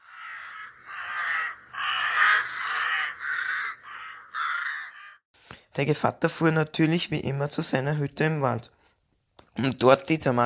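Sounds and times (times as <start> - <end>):
raven cawing: 0.0 - 5.2
speech: 5.8 - 8.8, 9.6 - 10.4.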